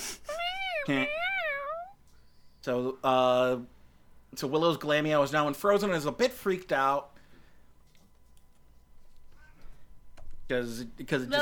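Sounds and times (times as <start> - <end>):
domestic cat meowing: 0.3 - 2.0
speech: 0.8 - 1.2, 2.6 - 7.1, 10.5 - 11.4.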